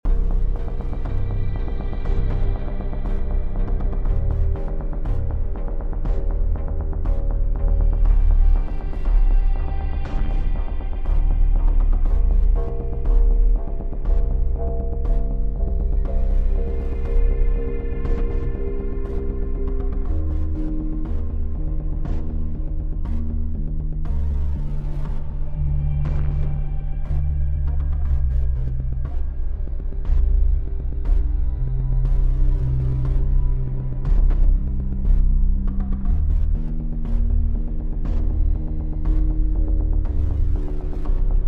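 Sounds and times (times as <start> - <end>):
suspense music loop: 0.0 - 41.4.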